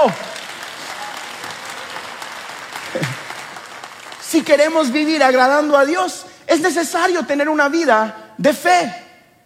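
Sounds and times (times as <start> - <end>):
speech: 0.0 - 0.3, 4.3 - 9.0
audience applauding: 0.0 - 5.8.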